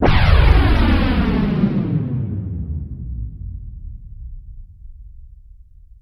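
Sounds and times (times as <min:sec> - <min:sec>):
space rocket Doppler whoosh: 0:00.0 - 0:04.5.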